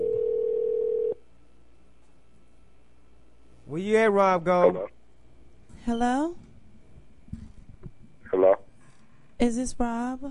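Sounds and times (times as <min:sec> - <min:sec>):
outgoing telephone call ringing tone: 0:00.0 - 0:01.2
speech: 0:03.8 - 0:05.0, 0:05.8 - 0:06.4, 0:09.4 - 0:10.3.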